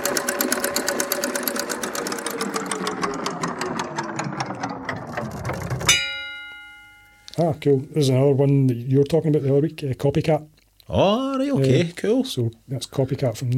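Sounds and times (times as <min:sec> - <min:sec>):
prize wheel spinning and clicking: 0:00.0 - 0:06.6
short ringing tone: 0:05.9 - 0:07.4
speech: 0:07.4 - 0:13.5.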